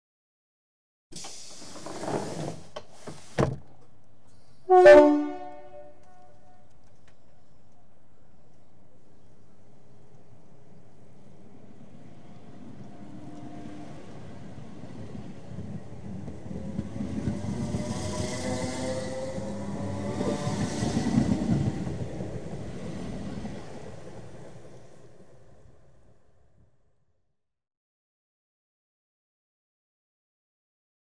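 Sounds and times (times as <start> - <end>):
train doors closing outside: 1.1 - 4.0, 12.5 - 23.9
train departing: 4.1 - 26.6
train hooter: 4.6 - 6.7, 16.5 - 22.0.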